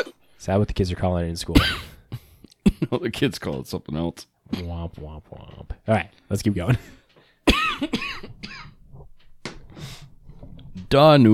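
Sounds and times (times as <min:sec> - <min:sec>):
speech: 0:00.0 - 0:02.0, 0:02.6 - 0:07.0, 0:07.8 - 0:08.4, 0:10.9 - 0:11.3
person coughing after choking on beer: 0:01.5 - 0:02.0, 0:07.5 - 0:08.8.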